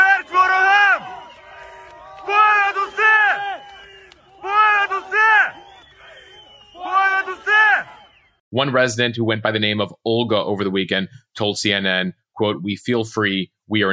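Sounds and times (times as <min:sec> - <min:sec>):
large crowd chanting in unison as soldiers enter: 0:00.0 - 0:08.4
speech: 0:08.6 - 0:13.9.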